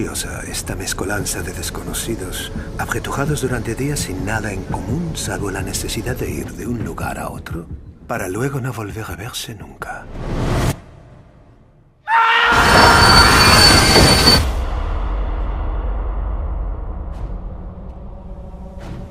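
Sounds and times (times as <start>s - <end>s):
heavy rumble of moving train carriages on rails: 0.0s - 9.5s, 12.6s - 19.1s
speech: 0.0s - 10.4s
train wheels squealing on rails: 12.5s - 14.6s.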